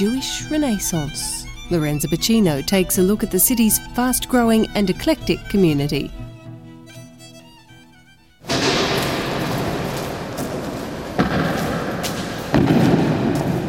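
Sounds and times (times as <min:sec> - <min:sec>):
speech: 0:00.0 - 0:06.3
dense noisy rumble: 0:00.0 - 0:06.5, 0:08.4 - 0:13.6
soft tonal notes: 0:00.0 - 0:11.1
heavy door thudding shut: 0:08.4 - 0:13.6.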